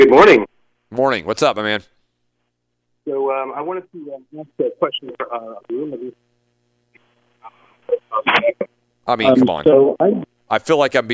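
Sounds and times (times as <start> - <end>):
speech: 0.0 - 1.9, 3.0 - 6.2, 7.4 - 11.1
caller's voice on a narrowband phone line breaking up: 3.1 - 6.2, 7.9 - 10.3.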